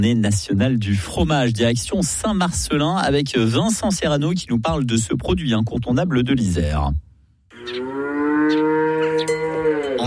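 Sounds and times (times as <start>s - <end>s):
speech: 0.0s - 7.0s
dairy cow mooing on a family farm: 7.5s - 10.0s.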